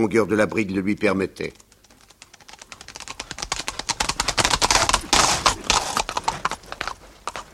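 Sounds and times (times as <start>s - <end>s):
speech: 0.0s - 1.6s
horse grazing beside the road, tearing and crunching grass: 3.7s - 7.5s.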